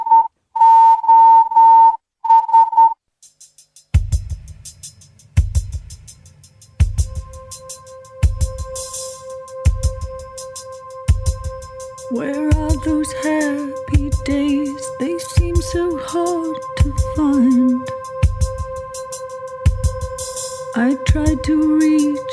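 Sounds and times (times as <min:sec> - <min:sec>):
bright electronic tone beeping Morse code SOS: 0:00.0 - 0:03.0
slow music track with heavy drum hits: 0:03.2 - 0:22.3.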